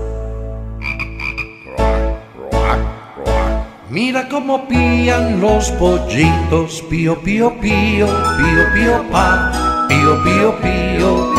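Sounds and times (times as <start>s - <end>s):
frogs croaking: 0.8s - 3.9s
speech: 3.9s - 11.3s.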